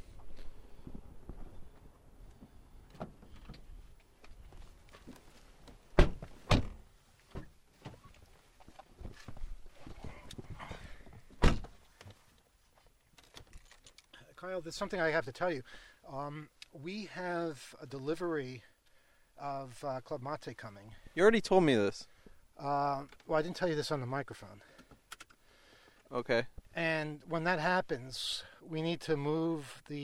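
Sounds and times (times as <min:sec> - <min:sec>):
car door opening and shutting: 0:06.0 - 0:06.8, 0:11.4 - 0:11.8
speech: 0:14.4 - 0:18.7, 0:19.4 - 0:24.7, 0:26.1 - 0:30.0.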